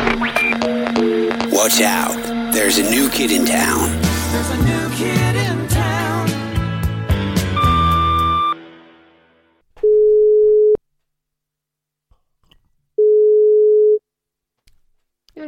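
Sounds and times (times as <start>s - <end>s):
jumbled music: 0.0s - 9.0s
speech: 1.6s - 5.6s
phone ringback tone: 7.6s - 8.6s, 9.8s - 10.8s, 13.0s - 14.0s.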